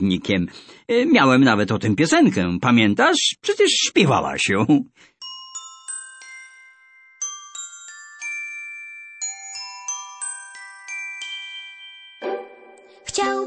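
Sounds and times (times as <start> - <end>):
speech: 0.0 - 5.1
bells ringing a quick tuneful sequence: 5.2 - 13.4.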